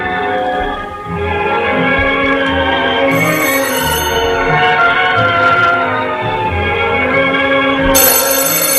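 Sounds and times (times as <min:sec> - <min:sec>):
dense steady tonal background: 0:00.0 - 0:08.7
telephone ringing at home: 0:03.1 - 0:05.8, 0:07.9 - 0:08.7.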